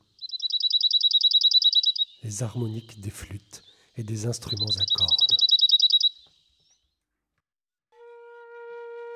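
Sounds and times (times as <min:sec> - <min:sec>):
bird singing a fast high-pitched trill: 0:00.0 - 0:03.0, 0:04.4 - 0:06.8
speech: 0:02.2 - 0:05.3.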